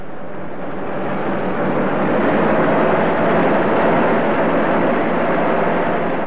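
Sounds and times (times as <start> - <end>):
car engine roaring at high speed along a road: 0.0 - 6.2.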